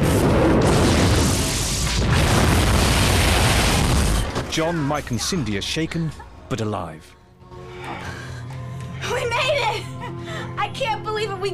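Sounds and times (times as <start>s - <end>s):
space liner wrecked by internal explosions: 0.0s - 4.6s
speech: 4.6s - 7.2s, 10.7s - 11.5s.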